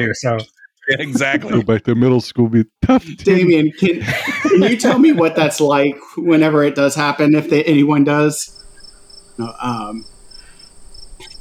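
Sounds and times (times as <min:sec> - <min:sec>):
speech: 0:00.0 - 0:08.6, 0:09.4 - 0:10.1
laughter: 0:00.8 - 0:06.2
crickets chirping: 0:08.5 - 0:11.3.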